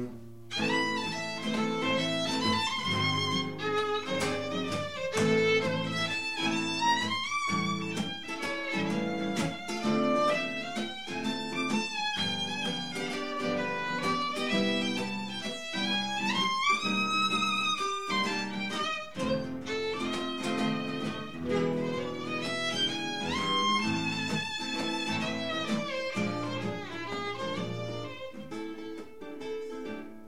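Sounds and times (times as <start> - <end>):
violin solo: 0.1 - 30.0.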